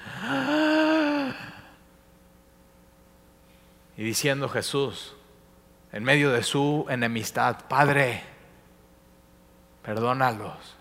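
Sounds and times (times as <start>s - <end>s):
person imitating labored gasping breath: 0.0s - 1.8s
speech: 4.0s - 5.2s, 5.9s - 8.3s, 9.8s - 10.8s.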